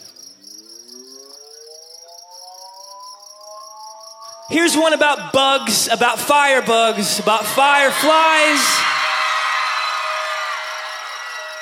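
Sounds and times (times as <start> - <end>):
crickets chirping indoors: 0.0 - 7.2, 9.6 - 11.6
faint tone rising in pitch: 0.8 - 4.5
speech: 4.5 - 9.0.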